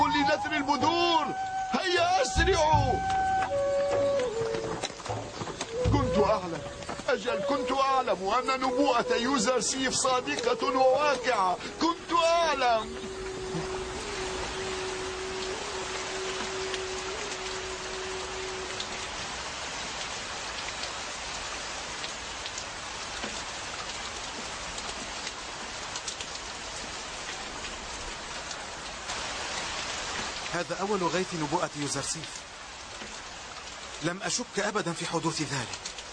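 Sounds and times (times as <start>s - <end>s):
rain pouring and spattering on surfaces: 0.0s - 36.1s
speech: 6.5s - 13.1s, 30.7s - 32.5s, 34.0s - 35.9s
faint low humming tone: 12.8s - 19.4s.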